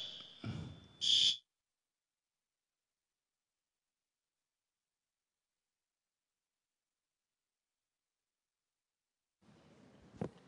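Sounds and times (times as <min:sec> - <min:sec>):
loud shrill fire alarm blaring in church: 0:00.0 - 0:01.4.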